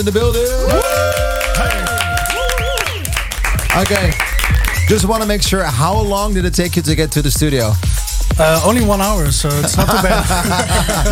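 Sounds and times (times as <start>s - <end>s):
speech: 0.0s - 2.1s, 3.7s - 4.3s, 4.9s - 11.1s
studio audience cheering with whoops and shouts: 0.5s - 5.0s
studio audience clapping: 0.7s - 5.5s
laughter: 9.5s - 11.1s.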